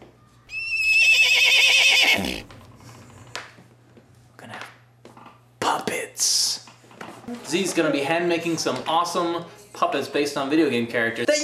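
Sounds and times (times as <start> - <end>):
faint hum: 0.0 - 11.4
horse whinnying: 0.5 - 2.7
speech: 7.5 - 11.4.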